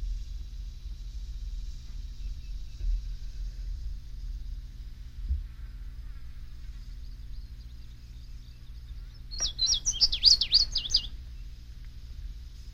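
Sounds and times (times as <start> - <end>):
steady low hum: 0.0 - 12.7
indigo bunting song: 7.4 - 11.6.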